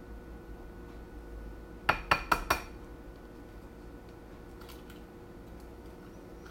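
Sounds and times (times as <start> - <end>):
egg tapped against a bowl to crack it: 1.9 - 2.8.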